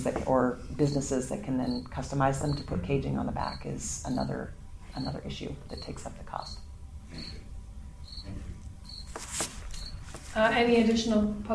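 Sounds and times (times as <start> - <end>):
speech: 0.0 - 6.6, 10.4 - 11.5
crickets chirping: 3.4 - 10.1
soft rustle: 8.4 - 11.0.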